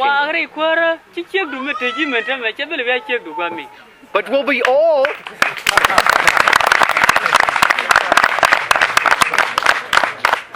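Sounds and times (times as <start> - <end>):
speech: 0.0 - 6.8
audience applause and clapping: 4.6 - 10.5.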